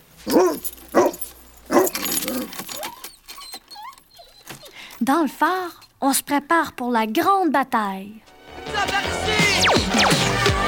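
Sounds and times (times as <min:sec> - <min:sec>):
speech: 0:00.2 - 0:00.8, 0:05.0 - 0:10.3
dog barking while breaking its kennel chain: 0:00.3 - 0:02.0
dog breaking its kennel chain: 0:00.3 - 0:04.2.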